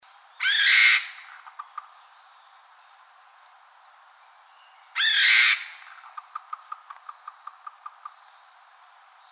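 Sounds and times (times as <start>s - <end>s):
Chinese bamboo partridge calling: 0.2s - 9.3s.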